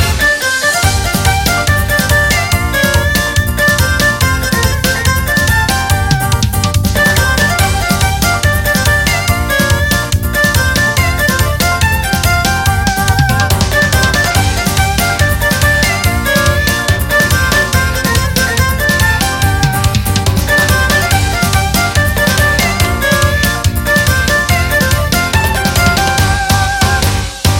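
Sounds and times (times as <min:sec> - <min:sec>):
erhu: 0:00.2 - 0:27.5.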